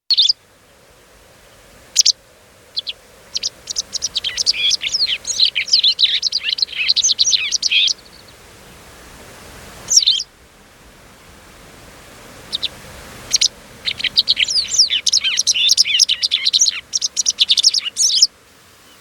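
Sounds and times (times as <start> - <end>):
wagtail calling: 0.0 - 18.9.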